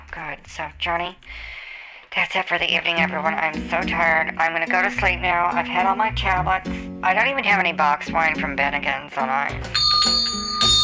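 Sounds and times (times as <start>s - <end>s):
speech: 0.2s - 10.5s
small bell jingling: 9.7s - 10.8s.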